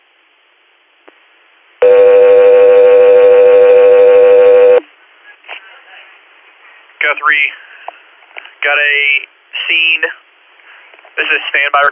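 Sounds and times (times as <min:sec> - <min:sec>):
faint noise: 0:00.0 - 0:11.9
radio dispatch alert tone: 0:01.8 - 0:04.8
speech: 0:07.1 - 0:07.6, 0:08.6 - 0:10.2, 0:11.2 - 0:11.9.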